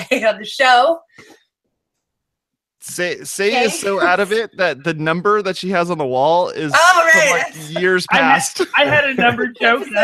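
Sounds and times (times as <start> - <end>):
speech: 0.1 - 1.4, 2.8 - 10.0
laughter: 2.9 - 10.0
person coughing or clearing throat: 3.6 - 4.6, 7.6 - 9.5.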